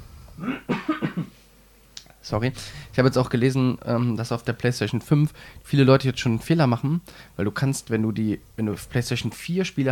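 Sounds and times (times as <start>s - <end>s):
person coughing: 0.4s - 1.4s
speech: 2.3s - 9.9s.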